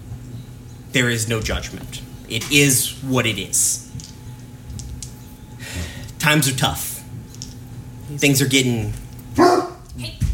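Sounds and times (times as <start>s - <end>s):
faint low hum: 0.0s - 10.3s
speech: 0.9s - 3.8s, 6.2s - 6.9s, 8.1s - 10.2s
dog barking: 9.4s - 9.8s.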